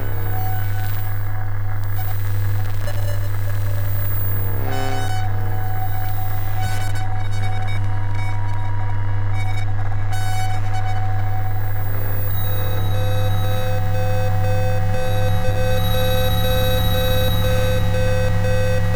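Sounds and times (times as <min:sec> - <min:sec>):
higher electromagnetic whine: 0:00.0 - 0:07.2, 0:10.6 - 0:18.9
fixed whining electromagnetic tones: 0:00.0 - 0:18.9
strong steady low electromagnetic hum from apartment sources: 0:00.0 - 0:18.9.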